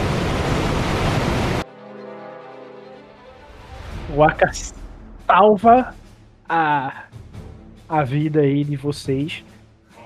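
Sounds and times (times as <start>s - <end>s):
roar of an approaching waterfall: 0.0s - 1.6s
speech: 4.2s - 7.2s, 7.9s - 9.5s.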